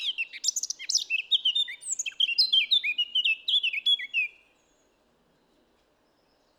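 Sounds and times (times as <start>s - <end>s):
Eurasian blackcap Sylvia atricapilla singing: 0.0s - 4.3s.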